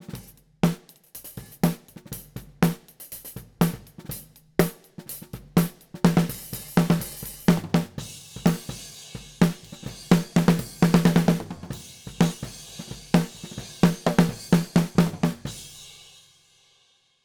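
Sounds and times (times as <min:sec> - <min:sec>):
snare drum recorded from the top: 0:00.0 - 0:16.0.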